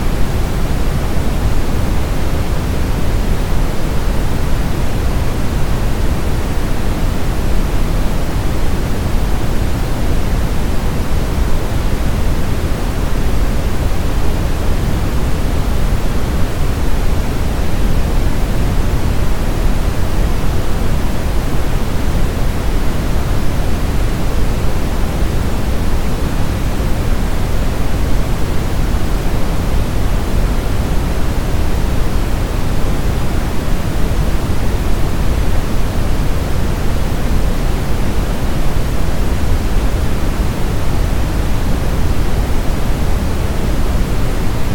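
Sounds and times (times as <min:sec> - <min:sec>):
brown noise: 0:00.0 - 0:44.7.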